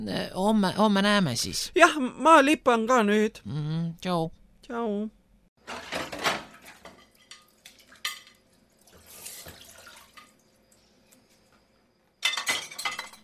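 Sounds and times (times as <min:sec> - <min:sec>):
speech: 0:00.0 - 0:06.0
dishes clinking while being washed in a kitchen: 0:05.7 - 0:08.5, 0:12.2 - 0:13.2
water splashing: 0:08.8 - 0:10.4.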